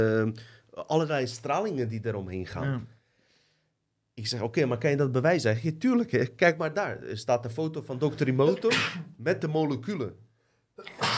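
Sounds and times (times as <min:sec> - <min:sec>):
speech: 0:00.0 - 0:03.0, 0:04.2 - 0:10.2, 0:10.8 - 0:11.1
person sneezing: 0:08.6 - 0:09.2, 0:10.8 - 0:11.1.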